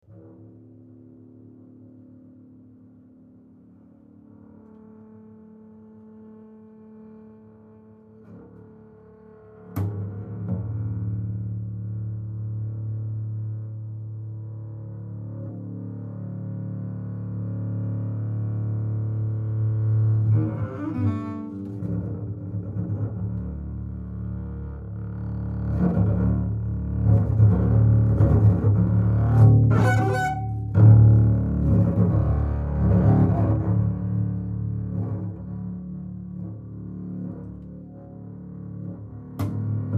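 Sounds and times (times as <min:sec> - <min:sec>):
double bass playing contemporary music: 0:08.5 - 0:39.9.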